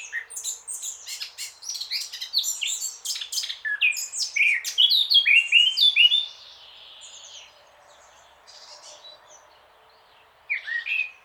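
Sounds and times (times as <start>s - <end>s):
Eurasian blackcap Sylvia atricapilla singing: 0.0s - 6.4s.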